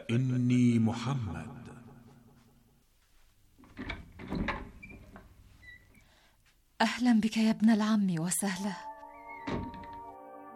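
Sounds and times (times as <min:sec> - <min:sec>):
speech: 0:00.1 - 0:01.6, 0:07.0 - 0:08.9
wooden door knocking and rattling as it is opened: 0:03.6 - 0:05.3, 0:09.4 - 0:10.0
door creaking as it swings open: 0:03.6 - 0:06.1, 0:09.1 - 0:10.2.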